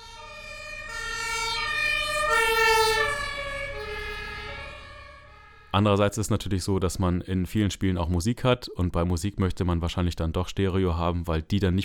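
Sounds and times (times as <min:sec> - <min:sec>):
passing two-tone ambulance siren with Doppler pitch shift: 0:00.0 - 0:06.0
low road rumble: 0:00.0 - 0:06.9
speech: 0:05.8 - 0:11.8.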